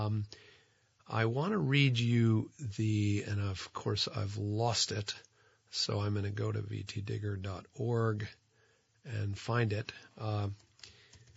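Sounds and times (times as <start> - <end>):
speech: 0.0 - 0.5, 1.1 - 8.4, 9.0 - 10.7
typing on a computer keyboard: 10.6 - 11.3.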